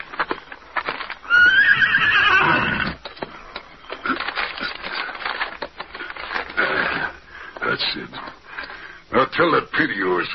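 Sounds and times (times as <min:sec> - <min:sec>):
horse hooves clip-clopping while trotting: 0:00.0 - 0:06.6
horse whinnying: 0:01.2 - 0:03.0
speech: 0:09.4 - 0:10.3.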